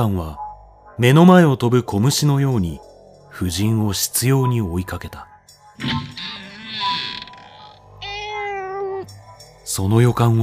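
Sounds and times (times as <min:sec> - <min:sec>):
speech: 0:00.0 - 0:00.4, 0:01.0 - 0:06.4, 0:09.8 - 0:10.4
cat meowing: 0:06.4 - 0:09.2.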